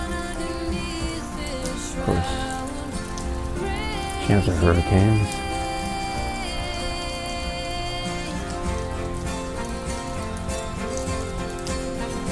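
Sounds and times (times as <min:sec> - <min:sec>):
steady rain falling outdoors: 0:00.0 - 0:12.3
speech: 0:04.3 - 0:05.5.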